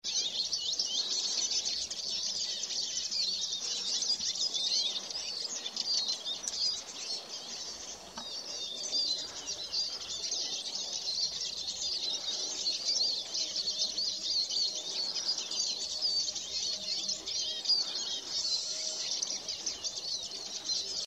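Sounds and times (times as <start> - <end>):
birds: 0.0 - 21.0.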